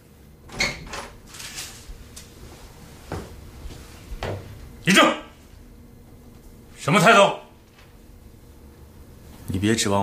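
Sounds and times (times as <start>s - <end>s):
door opening with clunk and rattle: 0.5s - 1.2s
speech: 4.9s - 5.2s, 6.9s - 7.4s, 9.6s - 10.0s.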